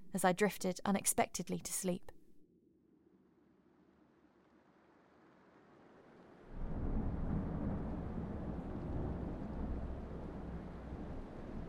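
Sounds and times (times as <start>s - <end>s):
speech: 0.1s - 2.2s
rain clattering on the window: 3.9s - 11.6s
gale winds striking hotel walls: 6.2s - 11.6s
rolling thunder of a night-time thunderstorm: 6.5s - 11.6s.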